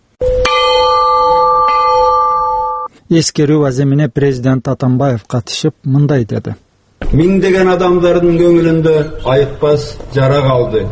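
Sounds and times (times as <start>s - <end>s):
peace bell ringing at a memorial in Osh: 0.2s - 2.9s
speech: 3.1s - 10.8s.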